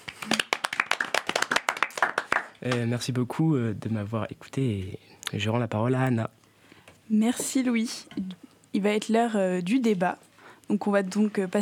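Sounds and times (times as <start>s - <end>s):
audience clapping at a presentation: 0.0s - 2.9s
speech: 2.6s - 6.4s, 7.1s - 11.5s.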